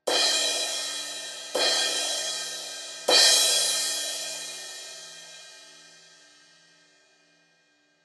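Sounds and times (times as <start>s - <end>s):
crash cymbal hits: 0.1s - 5.9s.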